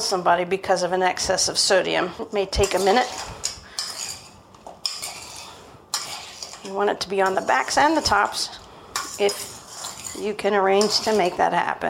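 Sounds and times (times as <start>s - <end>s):
speech: 0.1s - 3.5s, 6.7s - 8.6s, 9.2s - 9.5s, 10.2s - 11.8s
metal utensil clinking in a dish of salted tomatoes: 2.6s - 11.4s.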